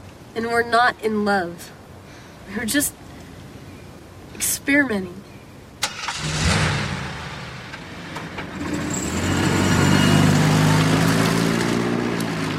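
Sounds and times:
speech: 0:00.4 - 0:01.8, 0:02.5 - 0:03.0, 0:04.4 - 0:05.3
car engine running as the vehicle drives away: 0:05.8 - 0:12.5.

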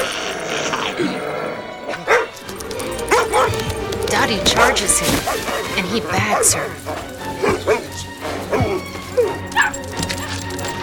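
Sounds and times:
puppies yipping: 0:00.0 - 0:10.8
scuffling: 0:02.1 - 0:10.8
speech: 0:04.3 - 0:07.1.

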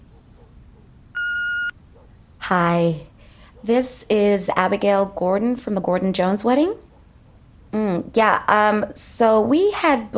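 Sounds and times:
electronic telephone beep as a woman dials a phone: 0:01.2 - 0:01.8
speech: 0:02.5 - 0:06.8, 0:07.7 - 0:10.1.

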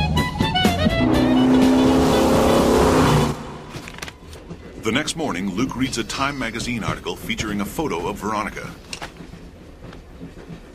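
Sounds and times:
car engine droning through an all-night drive: 0:00.7 - 0:04.2
speech: 0:04.9 - 0:08.8.

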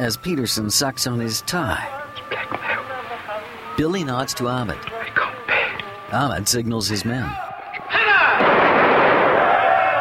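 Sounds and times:
speech: 0:00.0 - 0:02.6, 0:03.8 - 0:05.0, 0:06.1 - 0:07.4
gunfire volley from a firing squad at an execution: 0:08.3 - 0:09.9.

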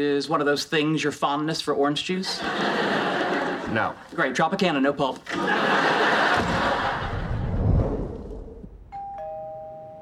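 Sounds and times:
speech: 0:00.0 - 0:05.8
laughter: 0:02.2 - 0:04.4, 0:05.2 - 0:07.6
doorbell chiming two-note ding-dong: 0:08.9 - 0:10.0.

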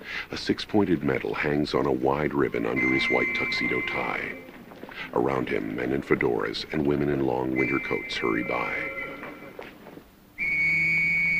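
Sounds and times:
quiet street murmur on a busy London street: 0:00.0 - 0:11.3
speech: 0:00.2 - 0:09.0
police constable's whistle blast on a busy London street: 0:02.7 - 0:04.5, 0:07.5 - 0:09.3, 0:10.4 - 0:11.3.

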